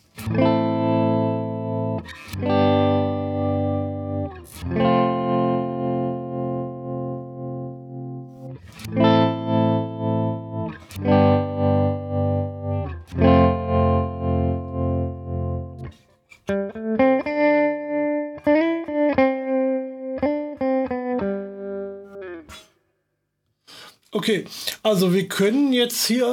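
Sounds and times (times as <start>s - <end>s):
electric guitar with tremolo effect: 0.0s - 22.8s
speech: 24.2s - 26.3s.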